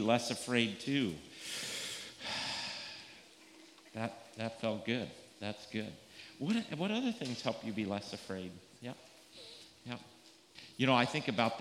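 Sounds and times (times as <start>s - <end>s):
speech: 0.0s - 1.7s, 4.0s - 10.1s, 10.8s - 11.5s
deep breath in and out: 1.3s - 3.2s.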